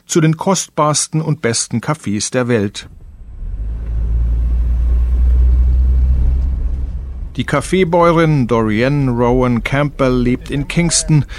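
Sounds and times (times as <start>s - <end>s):
speech: 0.1s - 3.0s, 7.4s - 11.3s
pickup truck engine rumbling on a winding bumpy mountain road in Jamaica's Blue Mountains: 2.7s - 11.3s.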